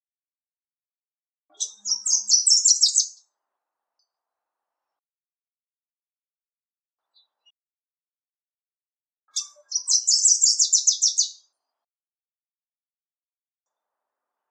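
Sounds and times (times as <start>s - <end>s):
Wilson's warbler chattering song: 1.5s - 3.2s, 9.3s - 11.4s.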